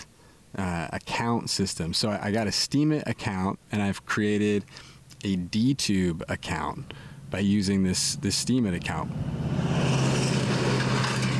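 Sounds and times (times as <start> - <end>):
speech: 0.5 - 9.6
big truck driving by: 8.0 - 11.3.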